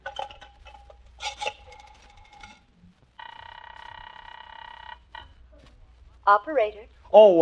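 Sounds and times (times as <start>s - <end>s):
old telephone bell ringing: 3.2s - 5.3s
speech: 6.3s - 7.3s.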